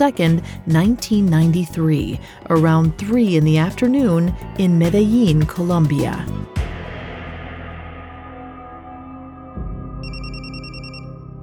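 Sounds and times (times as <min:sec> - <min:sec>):
speech: 0:00.0 - 0:06.6
low sustained droning music bed: 0:00.0 - 0:11.4
telephone ringing with rapid electronic trill: 0:10.0 - 0:11.3.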